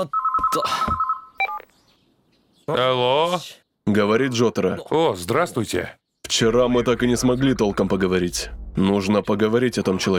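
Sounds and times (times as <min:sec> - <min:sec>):
speech: 0:00.0 - 0:01.0, 0:02.7 - 0:10.1
telephone ringing with a bright electronic tone: 0:00.0 - 0:01.6
brief two-tone chirp: 0:00.0 - 0:01.7.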